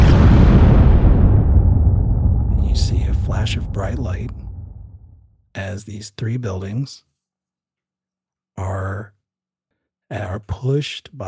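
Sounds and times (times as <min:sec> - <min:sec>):
atomic bomb explosion roaring: 0:00.0 - 0:05.3
speech: 0:03.8 - 0:04.5, 0:05.6 - 0:07.1, 0:08.6 - 0:09.2, 0:10.1 - 0:11.2.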